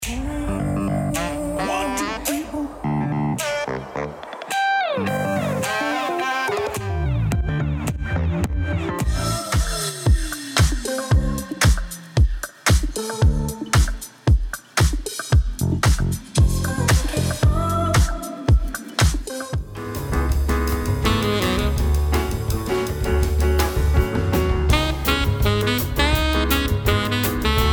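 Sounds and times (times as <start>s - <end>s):
music for rooftop and beach: 0.0s - 27.7s.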